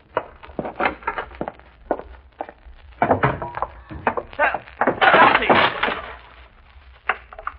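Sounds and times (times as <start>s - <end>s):
wood knocking and creaking: 0.0s - 6.3s
hissy room noise: 0.0s - 7.5s
foot breaking through a wooden step with a sharp crack: 0.1s - 6.1s.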